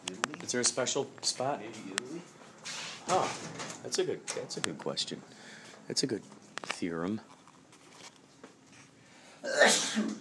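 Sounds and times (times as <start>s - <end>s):
speech: 0.5s - 7.4s
sneeze: 9.4s - 10.1s.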